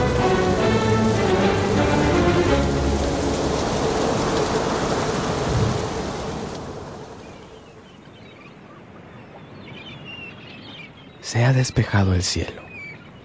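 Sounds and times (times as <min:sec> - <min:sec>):
heavy rain pouring down at night: 0:00.0 - 0:08.0
violent hurricane roaring: 0:00.0 - 0:10.0
speech: 0:11.3 - 0:12.6.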